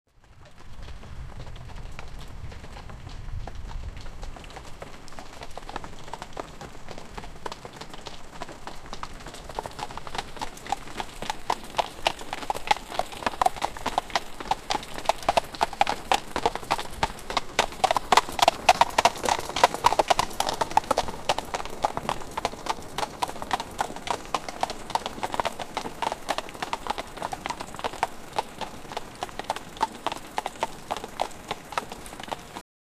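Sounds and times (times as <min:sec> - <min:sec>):
rain: 0:00.1 - 0:32.6.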